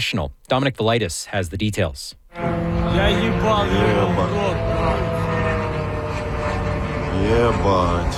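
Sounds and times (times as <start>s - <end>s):
speech: 0.0s - 5.1s, 7.2s - 8.1s
drone engine buzzing overhead: 2.3s - 8.1s.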